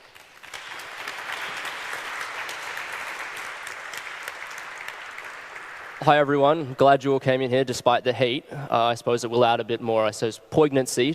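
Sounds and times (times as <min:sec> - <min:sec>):
audience applause: 0:00.0 - 0:06.8
speech: 0:06.0 - 0:11.1.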